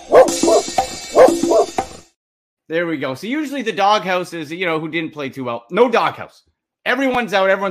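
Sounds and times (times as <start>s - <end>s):
dog barking: 0.1s - 1.8s
speech: 2.7s - 7.6s.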